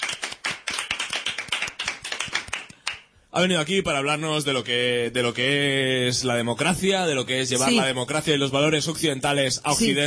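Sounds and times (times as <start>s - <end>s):
crowd applauding with many hands clapping: 0.0s - 3.0s
speech: 3.4s - 10.0s.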